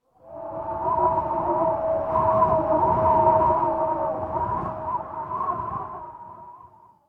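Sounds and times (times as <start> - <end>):
clear wind: 0.0 - 7.0.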